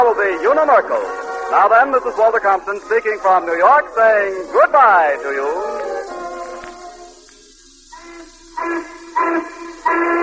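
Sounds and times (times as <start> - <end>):
steam whistle blowing: 0.0 - 10.2
speech: 0.2 - 6.2, 8.6 - 10.2.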